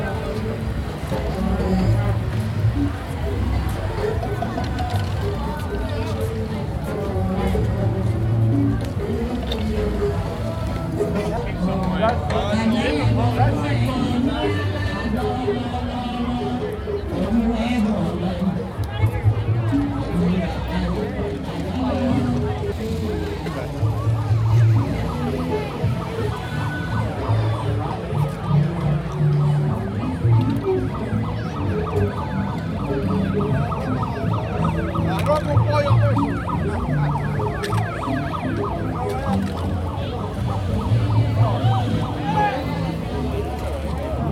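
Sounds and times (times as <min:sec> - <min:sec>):
dense crowd chatter at a busy street festival: 0:00.0 - 0:44.3
faint siren-like wail: 0:20.6 - 0:44.3.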